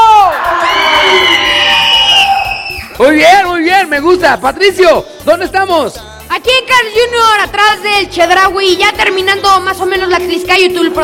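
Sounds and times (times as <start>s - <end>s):
people shouting and cheering: 0.0s - 4.0s
speech: 3.1s - 11.0s.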